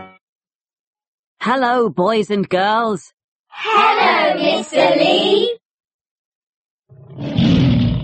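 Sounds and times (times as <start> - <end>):
speech: 1.4 - 5.6
tiger roaring: 6.9 - 8.0.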